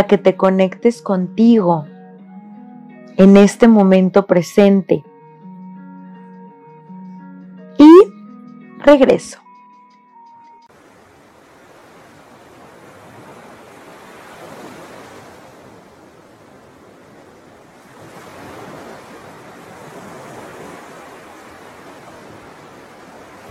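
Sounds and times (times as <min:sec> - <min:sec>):
speech: 0:00.0 - 0:01.9, 0:03.1 - 0:05.1, 0:08.8 - 0:09.4
ocean waves breaking on shore: 0:10.7 - 0:23.4.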